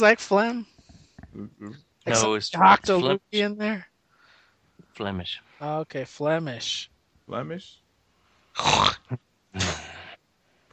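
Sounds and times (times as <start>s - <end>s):
speech: 0.0s - 0.7s, 1.4s - 3.9s, 5.0s - 7.8s, 8.6s - 9.9s
person sneezing: 9.6s - 10.2s.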